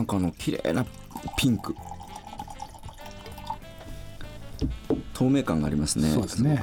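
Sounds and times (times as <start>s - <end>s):
speech: 0.0s - 1.9s, 5.2s - 6.6s
Pinot Noir rosé wine poured into a glass: 0.0s - 3.8s.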